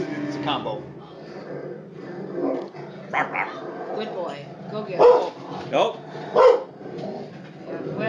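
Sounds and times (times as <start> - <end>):
dog growling low: 0.7 - 8.0
dog barking sharply: 2.4 - 4.1, 4.9 - 5.4, 6.3 - 6.8
speech: 5.7 - 6.0.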